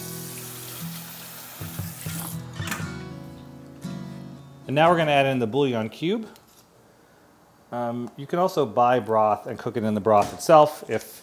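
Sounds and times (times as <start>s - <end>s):
faucet running: 0.0s - 2.4s
speech: 4.7s - 6.4s, 7.7s - 11.2s.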